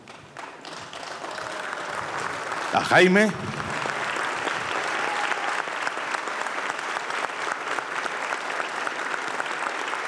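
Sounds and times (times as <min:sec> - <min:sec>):
audience applauding at a community plenary meeting: 0:00.3 - 0:10.0
speech: 0:02.7 - 0:03.6.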